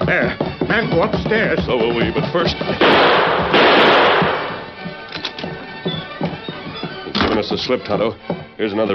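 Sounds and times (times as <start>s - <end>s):
speech: 0.1s - 3.9s, 7.5s - 8.8s
gunshot blast in a radio drama: 2.8s - 4.7s.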